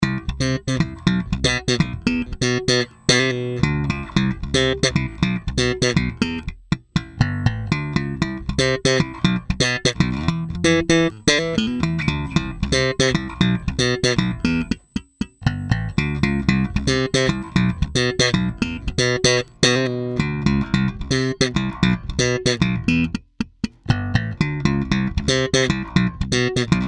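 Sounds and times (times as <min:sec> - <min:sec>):
active slap bass guitar: 0:00.0 - 0:26.8.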